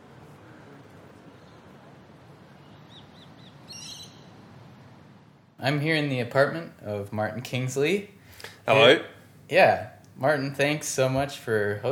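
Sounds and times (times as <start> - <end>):
bird chirping outdoors near the ocean: 2.6 - 4.4
speech: 5.6 - 11.9.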